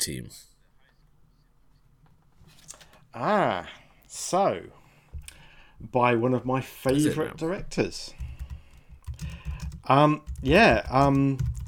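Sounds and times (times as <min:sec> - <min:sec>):
speech: 0:00.0 - 0:00.5, 0:03.1 - 0:04.8, 0:05.8 - 0:08.2, 0:09.2 - 0:11.6
computer keyboard typing: 0:08.1 - 0:11.6.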